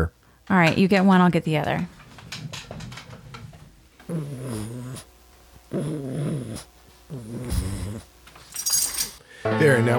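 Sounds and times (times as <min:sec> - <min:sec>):
speech: 0:00.0 - 0:02.7, 0:05.7 - 0:06.7, 0:09.4 - 0:09.9
two pug dogs snorting and snuffling: 0:02.8 - 0:08.1.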